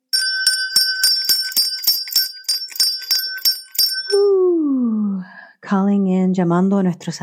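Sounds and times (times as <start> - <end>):
bright meditation bell struck rapidly: 0.0 - 4.5
speech: 5.7 - 7.2.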